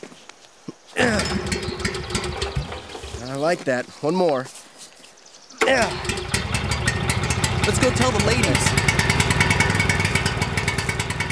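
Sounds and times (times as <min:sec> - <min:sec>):
speech: 0:01.0 - 0:01.6, 0:03.3 - 0:04.6, 0:05.6 - 0:06.2, 0:07.7 - 0:08.9
cleaned petrol generator engine starting and running: 0:01.0 - 0:03.3, 0:05.6 - 0:11.2.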